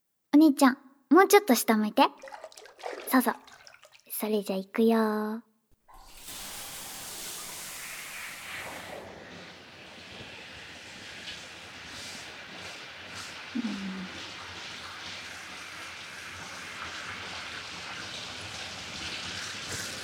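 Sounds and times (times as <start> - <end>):
speech: 0.4 - 3.5, 4.2 - 5.5
water spray rinsing shampoo from hair: 2.1 - 4.2, 5.9 - 13.4.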